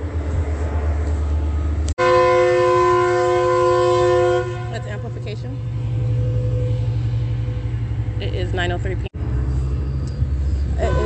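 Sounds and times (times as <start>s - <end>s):
commuter train arriving on the tracks: 0.0s - 11.0s
commuter train multi-tone horn: 2.0s - 5.4s, 10.8s - 11.0s.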